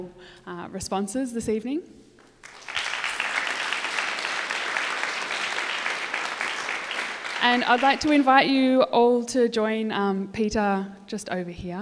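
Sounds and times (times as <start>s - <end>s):
speech: 0.0s - 2.6s, 7.4s - 11.8s
audience applause: 2.4s - 8.3s.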